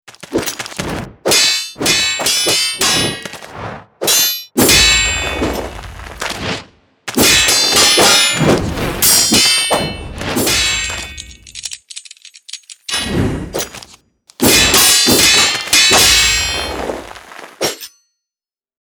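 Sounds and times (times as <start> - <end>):
sword clash sound effect: 1.3 - 3.4, 4.0 - 5.6, 7.2 - 13.7, 14.3 - 17.0, 17.6 - 18.0.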